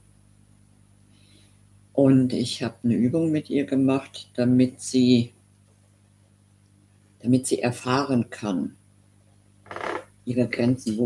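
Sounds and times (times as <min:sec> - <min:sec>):
speech: 0:02.0 - 0:05.4, 0:07.2 - 0:08.8, 0:09.7 - 0:11.0
desk chair squeaking: 0:09.6 - 0:10.1.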